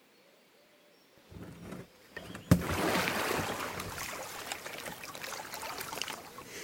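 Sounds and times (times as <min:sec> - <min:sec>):
kayak dropping into a river with a sharp knock: 0:01.3 - 0:04.0
kayak scraping and bumping: 0:01.3 - 0:05.2
river water splashing and lapping: 0:01.3 - 0:06.6.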